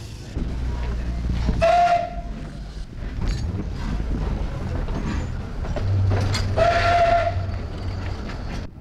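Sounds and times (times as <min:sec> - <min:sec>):
steam train engine and rolling wagons rumbling as it pulls away: 0:00.0 - 0:08.8
steam train whistle: 0:01.6 - 0:02.3, 0:06.6 - 0:07.5.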